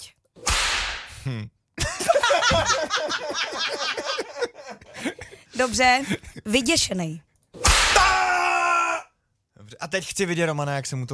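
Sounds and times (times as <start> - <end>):
sharp whip crack with a hissing tail: 0.4 - 1.1, 7.6 - 8.1
speech: 1.2 - 1.6, 2.4 - 7.3, 9.8 - 11.1
group laughing loudly: 1.8 - 6.6.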